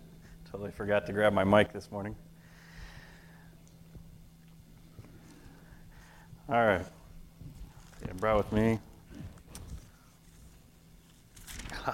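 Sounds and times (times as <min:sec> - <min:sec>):
speech: 0:00.6 - 0:02.3, 0:06.5 - 0:07.0, 0:08.1 - 0:08.9
paper rustling, crinkling and crumpling while being handled: 0:07.6 - 0:11.9.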